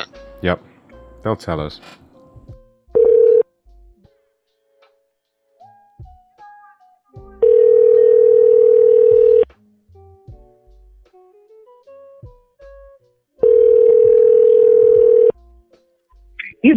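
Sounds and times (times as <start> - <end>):
speech: 0.4 - 2.0
electronic telephone tone while placing a call: 3.0 - 3.4, 7.4 - 9.5, 13.4 - 15.3.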